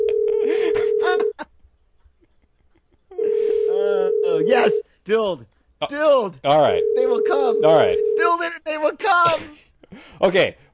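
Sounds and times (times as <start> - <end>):
incoming phone call ringing: 0.0 - 1.3, 3.2 - 4.8, 6.7 - 8.4
speech: 5.1 - 10.7.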